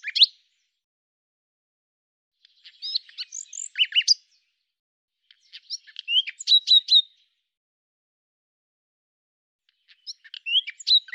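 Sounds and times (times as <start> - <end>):
common nightingale song: 0.0 - 0.8, 2.4 - 4.6, 5.2 - 7.4, 9.7 - 11.1.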